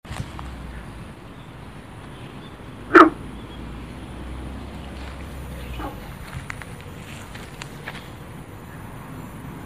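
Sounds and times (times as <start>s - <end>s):
steady background noise: 0.0s - 9.6s
Guenther's frog sylvirana guentheri giving a short sharp bark: 2.8s - 3.3s, 5.7s - 6.1s.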